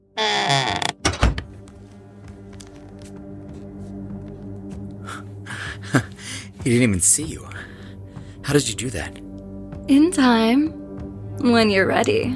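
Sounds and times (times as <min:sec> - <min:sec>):
door creaking: 0:00.0 - 0:01.5
door shutting with a solid thud: 0:01.0 - 0:01.6
speech: 0:06.0 - 0:07.7, 0:08.5 - 0:09.3, 0:09.9 - 0:10.8, 0:11.4 - 0:12.3.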